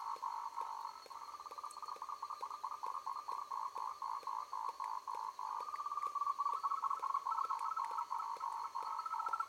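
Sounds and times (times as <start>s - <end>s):
frogs calling in a dense chorus in the evening: 0.0s - 9.4s.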